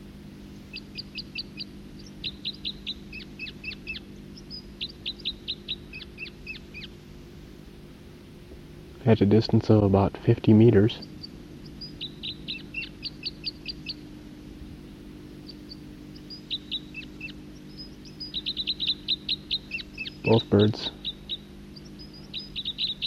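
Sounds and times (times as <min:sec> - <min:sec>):
low hum: 0:00.0 - 0:23.0
two birds calling back and forth with short high chirping notes: 0:00.0 - 0:23.0
speech: 0:09.1 - 0:11.1, 0:20.3 - 0:21.0.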